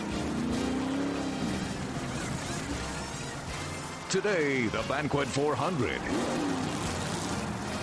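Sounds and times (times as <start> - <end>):
many stock car engines rumbling together at moderate speed: 0.0 - 7.8
speech: 4.1 - 6.7.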